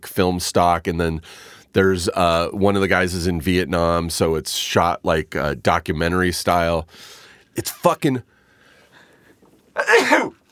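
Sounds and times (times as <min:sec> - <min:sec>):
speech: 0:00.1 - 0:08.3
loud human sneeze: 0:09.8 - 0:10.4.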